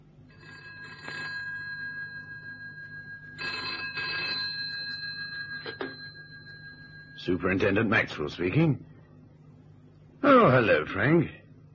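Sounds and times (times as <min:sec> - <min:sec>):
low hum: 0:00.0 - 0:11.7
telephone bell ringing in metallic bursts: 0:00.3 - 0:07.7
speech: 0:07.2 - 0:08.9, 0:10.5 - 0:11.4.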